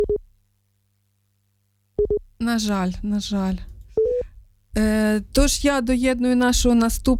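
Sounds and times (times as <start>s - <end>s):
speech: 2.4s - 3.7s, 4.8s - 7.1s
telephone busy tone after call dropped: 4.0s - 4.2s.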